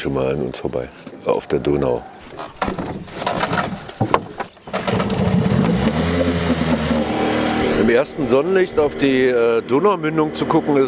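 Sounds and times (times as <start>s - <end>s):
speech: 0.0s - 3.0s, 7.9s - 10.8s
clattering and bumps: 2.3s - 7.2s
motorboat engine droning on the Danube: 4.0s - 10.8s.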